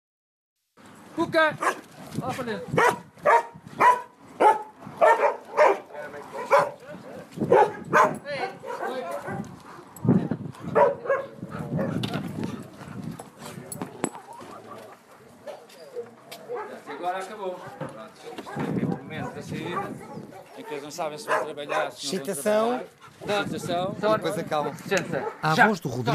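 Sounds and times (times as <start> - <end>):
speech: 1.2 - 3.1, 20.9 - 26.1
large Portuguese water dog barking: 1.6 - 1.8, 2.8 - 6.8, 7.5 - 9.9, 10.7 - 12.0, 15.4 - 22.1, 24.6 - 25.6.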